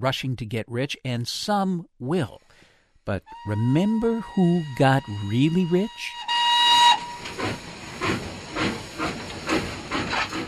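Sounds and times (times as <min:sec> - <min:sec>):
speech: 0:00.0 - 0:06.3, 0:07.4 - 0:08.8
steam train whistle shrieking: 0:03.3 - 0:08.1
steam train hissing chuffs of steam: 0:07.2 - 0:10.4.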